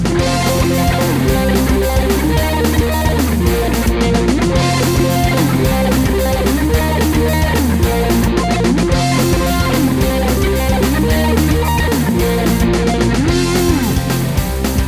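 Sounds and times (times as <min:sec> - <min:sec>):
fifth arpeggio: 0:00.2 - 0:14.7.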